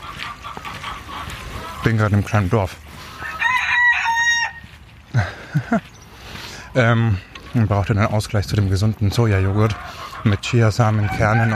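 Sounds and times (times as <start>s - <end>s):
speech: 1.8s - 2.9s, 5.2s - 5.9s, 6.8s - 11.5s
rooster crowing: 3.2s - 4.7s, 11.0s - 11.5s
laughter: 5.1s - 6.0s.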